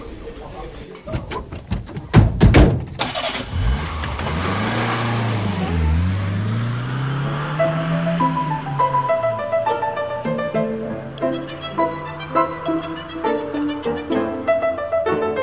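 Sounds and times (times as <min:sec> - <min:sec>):
door or handling clunks: 0:01.0 - 0:03.0
car engine starting: 0:02.9 - 0:15.4.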